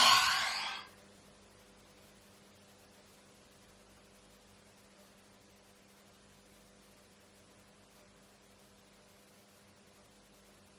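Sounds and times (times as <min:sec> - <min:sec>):
deep breathy exhale during a guided breathing practice: 0:00.0 - 0:00.9.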